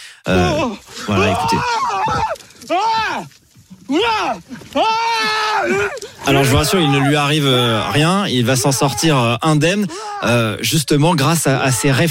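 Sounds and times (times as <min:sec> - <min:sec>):
speech: 0:00.2 - 0:12.1
man screaming during a bear attack: 0:00.3 - 0:03.3, 0:03.9 - 0:09.3, 0:09.9 - 0:10.6.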